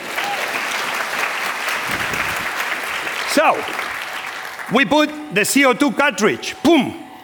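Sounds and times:
room full of people clapping: 0.0s - 5.7s
speech: 3.4s - 3.9s, 4.7s - 7.0s.

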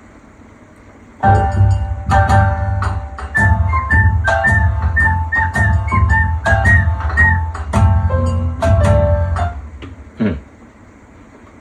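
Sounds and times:
backing track with steady bass and percussive hits: 1.2s - 10.4s
high pitch-shifted ocarina melody: 3.3s - 7.5s.

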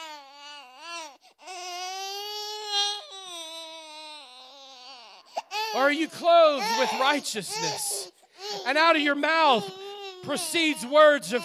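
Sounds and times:
voice imitating a crying baby with a wavering wail: 4.5s - 11.4s
speech: 5.7s - 11.4s.

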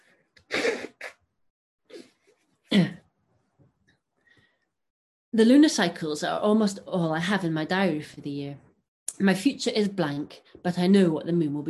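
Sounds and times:
person blowing their nose: 0.4s - 1.2s
speech: 5.4s - 11.6s.

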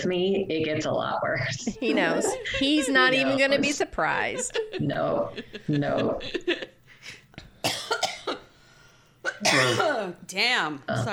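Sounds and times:
speech: 0.0s - 7.2s, 9.4s - 11.1s
laughter: 1.7s - 7.2s
barking seal-like cough: 9.3s - 9.9s.

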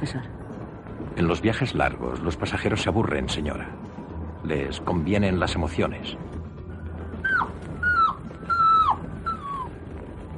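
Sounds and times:
speech: 0.0s - 0.4s, 1.0s - 6.3s
dog whimpering and howling in high-pitched cries: 7.2s - 9.8s.

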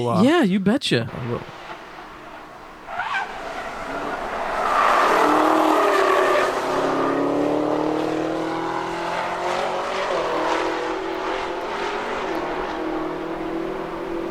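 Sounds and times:
speech: 0.0s - 1.6s
camouflaged Gen 6 Camaro test car engine revving on the Nürburgring: 1.4s - 14.2s
tire squeal: 1.6s - 9.2s.

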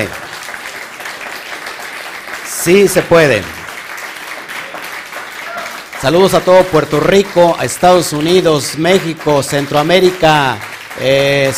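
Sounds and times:
large crowd applauding: 0.0s - 11.5s
speech: 2.6s - 3.6s, 6.0s - 11.5s
single voice calling out: 5.4s - 5.8s.

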